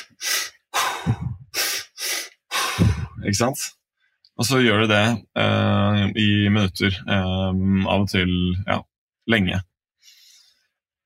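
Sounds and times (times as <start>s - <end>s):
rapid forceful mouth breathing, deliberate hyperventilating: 0.0s - 3.2s
speech: 3.2s - 3.8s, 4.4s - 9.7s.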